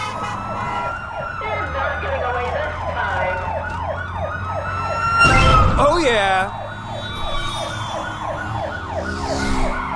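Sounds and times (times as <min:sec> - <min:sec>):
police car sirens in a car chase video game: 0:00.0 - 0:09.9.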